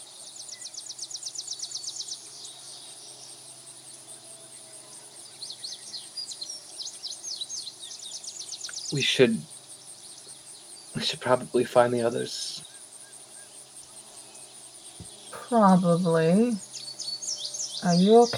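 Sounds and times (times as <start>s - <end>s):
birds chirping at dawn: 0.0s - 18.3s
faint hum: 0.0s - 18.3s
speech: 8.9s - 9.5s, 11.0s - 12.5s, 15.5s - 16.7s, 17.8s - 18.3s.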